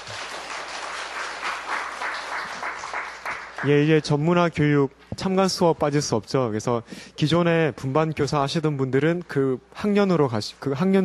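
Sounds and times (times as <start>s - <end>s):
audience applauding in thanks: 0.0s - 3.9s
speech: 3.6s - 11.0s.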